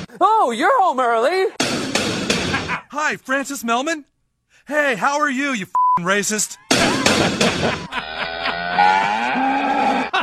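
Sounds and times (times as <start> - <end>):
speech: 0.2 - 1.6, 2.9 - 6.6, 7.2 - 8.1
laughter: 2.5 - 2.9, 6.7 - 10.2
cow mooing: 8.1 - 10.1.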